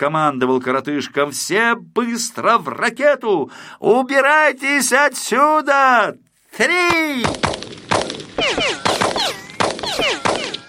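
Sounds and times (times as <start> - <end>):
speech: 0.0 - 7.8
rapid gunfire from police rifles: 7.2 - 10.6.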